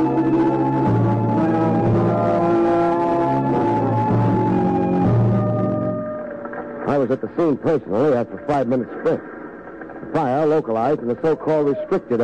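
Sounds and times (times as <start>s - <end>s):
volunteer fire engine siren wailing, racing toward a chemical plant: 0.0s - 7.0s
speech: 7.1s - 9.4s, 10.1s - 12.2s.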